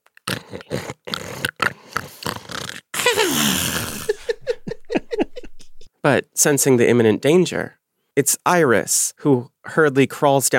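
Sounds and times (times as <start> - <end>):
voice imitating snoring: 0.2 - 4.4
laughter: 3.0 - 5.9
speech: 6.0 - 10.5.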